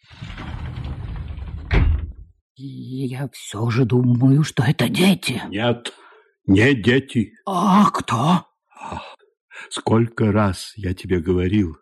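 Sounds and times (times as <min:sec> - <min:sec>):
sliding door opening into a hallway: 0:00.0 - 0:02.2
speech: 0:02.6 - 0:11.8.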